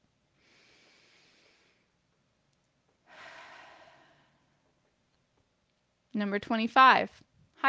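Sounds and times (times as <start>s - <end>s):
slow deep breath in and out: 0.3s - 2.0s, 3.0s - 4.7s
speech: 6.2s - 7.6s.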